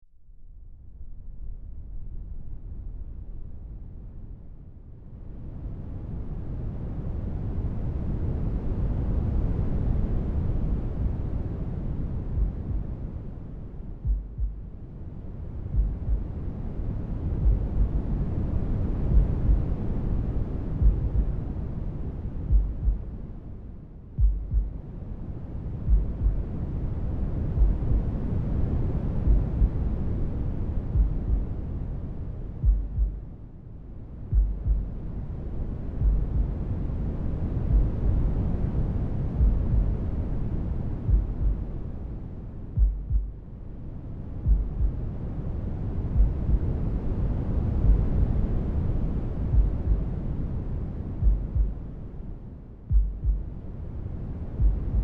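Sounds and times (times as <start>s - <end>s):
noise: 5.2s - 55.0s
heartbeat: 12.3s - 13.0s, 14.0s - 14.7s, 15.6s - 16.4s, 17.4s - 18.0s, 19.1s - 19.7s, 20.8s - 21.4s, 22.4s - 23.1s, 24.2s - 24.8s, 25.8s - 26.5s, 27.5s - 28.1s, 29.2s - 29.9s, 30.9s - 31.6s, 32.6s - 33.3s, 34.3s - 35.0s, 36.0s - 36.7s, 37.6s - 38.0s, 39.4s - 40.0s, 41.1s - 41.7s, 42.8s - 43.4s, 44.4s - 45.0s, 46.1s - 46.8s, 47.8s - 48.2s, 49.5s - 50.1s, 51.2s - 51.9s, 52.9s - 53.6s, 54.5s - 55.0s.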